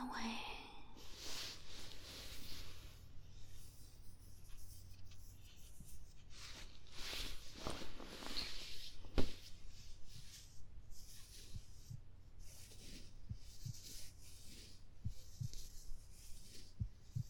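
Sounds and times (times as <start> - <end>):
faint airy rustling hiss: 0.0 - 17.2
heartbeat: 9.4 - 17.2.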